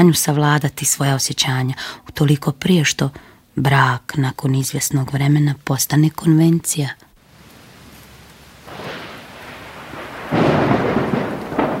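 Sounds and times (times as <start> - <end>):
speech: 0.0 - 7.1
rain falling: 7.2 - 11.7
rolling thunder: 7.3 - 11.7.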